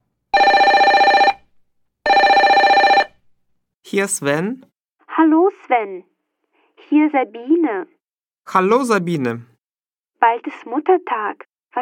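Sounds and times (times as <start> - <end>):
telephone ringing with an electronic trill: 0.3 - 3.2
speech: 3.9 - 6.1, 6.9 - 9.5, 10.2 - 11.8.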